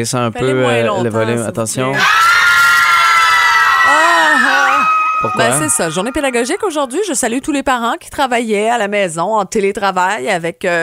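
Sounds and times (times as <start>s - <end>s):
speech: 0.0s - 2.4s, 5.2s - 10.8s
crowd of children shouting and cheering: 2.0s - 6.6s.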